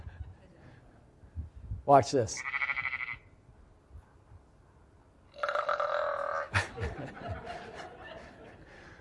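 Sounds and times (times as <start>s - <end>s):
speech: 1.9s - 2.6s
sheep brief nasal call: 2.4s - 3.2s, 5.4s - 6.5s
sheep deep throaty burp: 5.3s - 6.5s
laughter: 6.4s - 8.9s.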